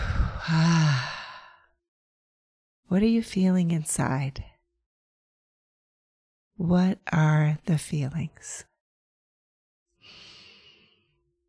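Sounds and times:
deep breath released as a low voiced sigh: 0.0 - 1.7, 10.0 - 11.0
speech: 2.9 - 4.5, 6.6 - 8.7.

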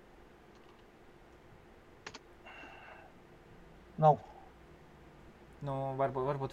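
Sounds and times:
faint hum: 0.0 - 6.5
soft keystrokes on a computer keyboard: 2.0 - 2.2
speech: 4.0 - 4.3, 5.6 - 6.5.

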